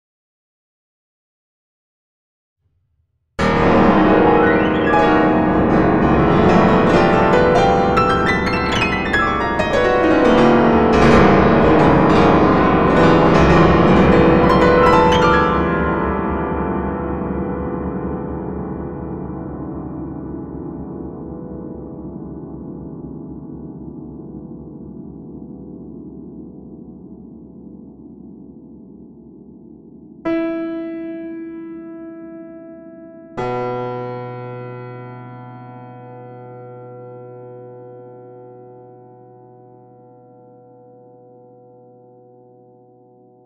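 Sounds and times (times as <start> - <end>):
piano plugin whimpering: 3.4 - 20.8.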